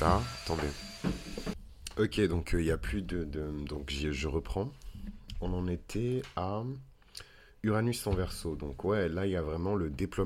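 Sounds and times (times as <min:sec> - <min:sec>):
speech: 0:00.0 - 0:01.3, 0:02.0 - 0:04.8, 0:05.4 - 0:10.2
vacuum cleaner running: 0:00.0 - 0:01.6.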